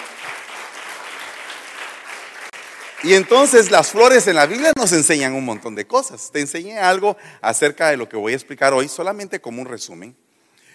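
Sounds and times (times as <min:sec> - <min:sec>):
crowd applauding with many hands clapping: 0:00.0 - 0:04.8
speech: 0:03.0 - 0:10.3.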